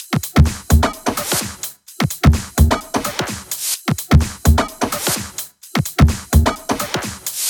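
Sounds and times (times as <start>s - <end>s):
drum kit: 0.0s - 7.4s.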